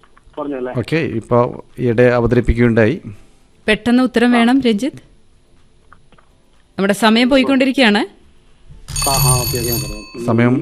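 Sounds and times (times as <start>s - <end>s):
speech: 0.4s - 5.1s, 6.8s - 8.2s, 9.0s - 10.6s
timer alarm ringing during a question-and-answer round: 8.9s - 10.6s.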